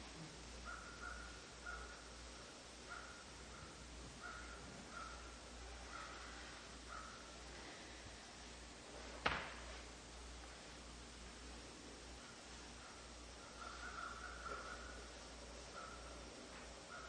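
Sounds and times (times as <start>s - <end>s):
constant low hiss and rumble of open outdoor air: 0.0s - 17.0s
crows cawing: 0.6s - 2.1s, 4.2s - 7.2s, 12.8s - 15.2s, 15.8s - 16.2s, 16.9s - 17.0s.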